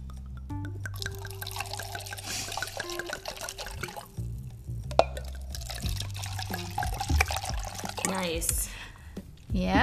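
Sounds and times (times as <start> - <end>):
drink poured into a glass: 0.7 - 8.2
speech: 8.2 - 8.7, 9.5 - 9.8.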